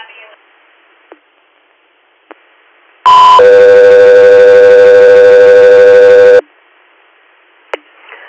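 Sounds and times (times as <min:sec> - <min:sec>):
faint radio hiss: 0:00.0 - 0:08.2
dispatch radio electronic alert tone: 0:03.1 - 0:06.4.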